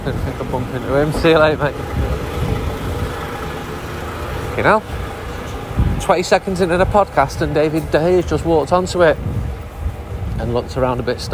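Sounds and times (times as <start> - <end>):
speech: 0.0 - 2.2, 4.6 - 5.0, 6.0 - 9.4, 10.4 - 11.3
team bus engine idling: 0.0 - 11.3.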